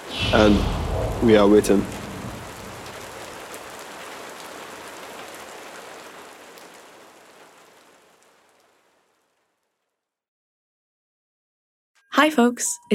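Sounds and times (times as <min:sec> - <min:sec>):
speech: 0:00.3 - 0:02.0, 0:12.2 - 0:12.9
rain pattering on a hard surface: 0:01.4 - 0:09.9.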